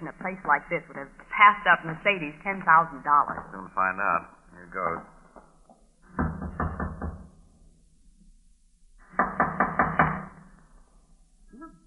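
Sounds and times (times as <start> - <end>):
speech: 0.0 - 5.1
knocking on a wooden door in a run-down old tenement: 6.2 - 7.3, 9.2 - 10.3.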